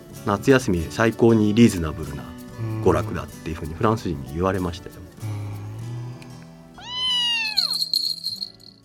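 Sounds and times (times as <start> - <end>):
speech: 0.2 - 5.3
cat meowing and yowling: 6.8 - 7.8.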